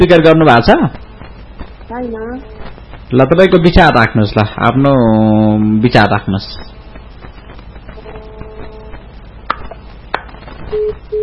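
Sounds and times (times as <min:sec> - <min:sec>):
speech: 0:00.0 - 0:01.0, 0:01.9 - 0:06.8
noisy phone line with faint tones: 0:00.0 - 0:11.2
phone line tone after the caller hung up: 0:10.7 - 0:11.2.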